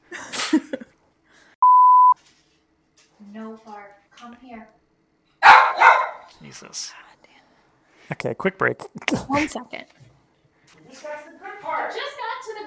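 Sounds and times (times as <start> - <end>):
steady electronic bleep: 1.6 - 2.2
dog barking: 5.4 - 6.4
speech: 6.5 - 7.0, 8.1 - 10.1.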